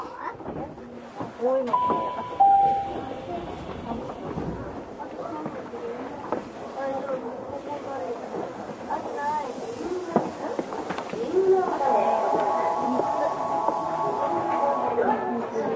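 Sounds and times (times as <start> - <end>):
Tokyu 6000 series train car rumbling between Azamino and Oimachi: 0.0 - 15.7
passengers talking inside a Tokyu 6000 series train: 0.0 - 15.7
Tokyu 6000 series train whining tone as it moves: 1.7 - 4.4, 11.4 - 15.7.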